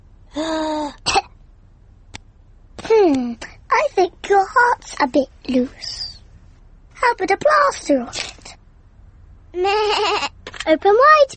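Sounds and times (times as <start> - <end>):
small child giving a short cough: 0.8 - 1.3
speech: 3.0 - 6.0, 7.0 - 8.4, 9.5 - 11.3.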